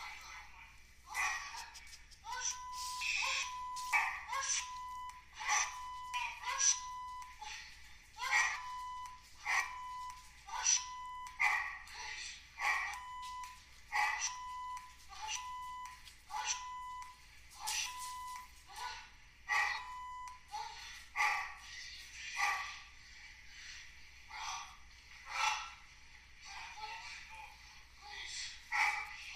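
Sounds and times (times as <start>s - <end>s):
faint thin electronic beeping: 0.0s - 18.9s, 19.5s - 21.3s
dog barking: 1.1s - 1.8s, 3.0s - 4.8s, 5.4s - 6.7s, 8.2s - 8.8s, 9.4s - 11.9s, 12.6s - 13.2s, 13.9s - 14.6s, 19.5s - 21.7s, 22.4s - 22.9s, 28.7s - 29.2s.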